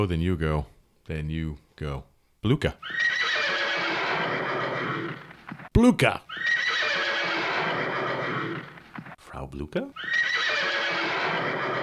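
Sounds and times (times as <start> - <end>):
speech: 0.0 - 3.1, 5.2 - 6.5, 9.4 - 10.1
horse neighing loudly with a bright strained whinny: 2.8 - 5.4, 6.3 - 9.1, 10.0 - 11.8.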